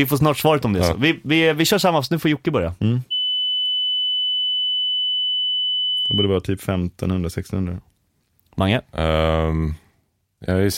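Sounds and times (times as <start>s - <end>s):
speech: 0.0s - 3.1s, 6.1s - 7.9s, 8.6s - 9.8s, 10.4s - 10.7s
pure test tone about 3 kHz: 3.1s - 6.3s.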